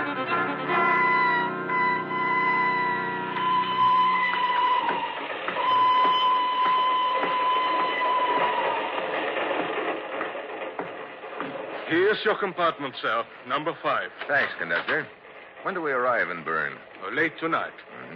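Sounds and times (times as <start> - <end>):
thin metallic squeal of a train: 0.0 - 9.0
train rumbling along the rails: 0.0 - 18.1
train clacks over the track joints: 2.0 - 18.1
speech: 12.2 - 18.1.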